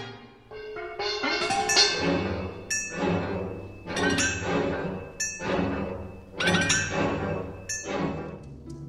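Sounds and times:
steel mixing bowls struck hard as part of a film score: 0.5s - 8.5s.

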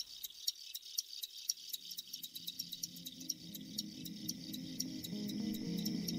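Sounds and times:
field crickets chirping: 0.0s - 6.1s.

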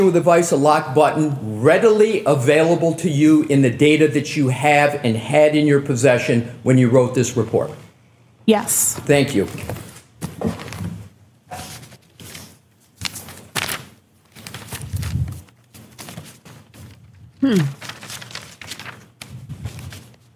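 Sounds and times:
speech: 0.0s - 7.8s, 8.5s - 10.6s, 17.4s - 17.9s
papers shuffled and rustled: 8.8s - 20.3s.

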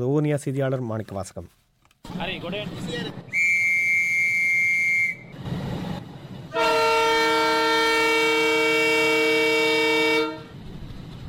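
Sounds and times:
speech: 0.0s - 1.6s, 2.2s - 3.4s
train rumbling noise on a trial journey towards Jaffna: 2.0s - 11.2s
shrill train whistle blast in Sri Lanka: 3.3s - 5.3s, 6.5s - 10.5s
long loud rich train horn blast in Sri Lanka: 6.5s - 10.6s.

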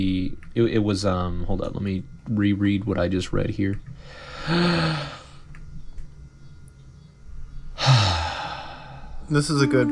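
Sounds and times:
speech: 0.0s - 5.2s, 9.3s - 9.8s
person yawning with breathy exhale and low groan: 4.4s - 5.3s, 7.8s - 9.1s.

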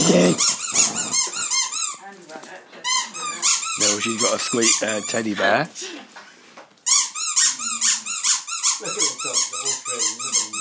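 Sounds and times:
squeaky toy being squeezed: 0.0s - 2.0s, 2.8s - 5.6s, 6.8s - 10.5s
speech: 0.1s - 0.8s, 3.8s - 6.1s.

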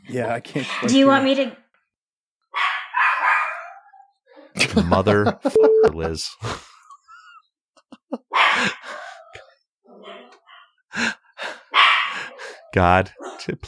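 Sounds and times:
speech: 0.1s - 1.6s, 4.6s - 6.7s, 8.1s - 9.0s, 10.9s - 11.2s, 12.7s - 13.6s
dog barking: 2.5s - 4.1s, 8.3s - 10.8s, 11.7s - 13.6s
laughter: 4.6s - 9.0s.

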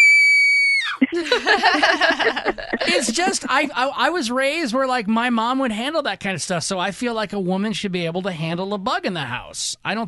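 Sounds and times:
woman screaming: 0.0s - 1.0s
speech: 0.9s - 10.0s
laughter: 1.0s - 3.9s.

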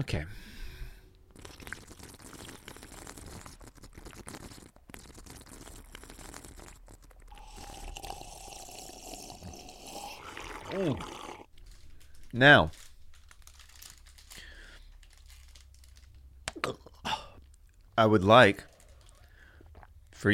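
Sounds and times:
speech: 0.0s - 0.6s, 10.7s - 11.1s, 12.3s - 12.8s, 18.0s - 18.7s, 20.2s - 20.3s
person with chewing tobacco drinking milk: 1.2s - 12.2s, 18.6s - 20.0s
loud swallow: 1.3s - 11.5s.

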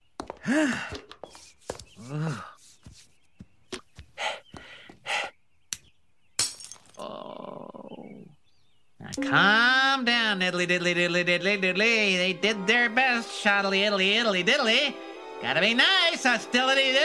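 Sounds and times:
breathing: 0.4s - 1.2s, 4.0s - 5.4s, 15.0s - 15.3s
speech: 0.5s - 2.5s, 9.2s - 17.0s
squeaky rubbing of a glasses lens: 1.2s - 3.5s
glasses lens falling out and smashing: 6.4s - 7.0s
person groaning: 7.0s - 8.3s.

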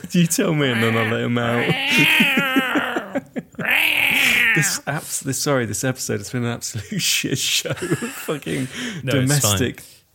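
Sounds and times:
speech: 0.1s - 3.3s, 4.5s - 10.1s
cat locked out of a room meowing behind a closed door: 0.7s - 3.0s, 3.6s - 4.8s
laughter: 0.7s - 5.1s, 7.0s - 8.8s.

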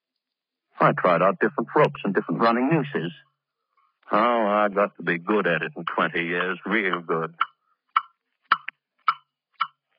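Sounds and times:
speech: 0.8s - 3.3s, 4.1s - 7.5s
clock ticking with crisp woody clicks: 5.2s - 9.8s.

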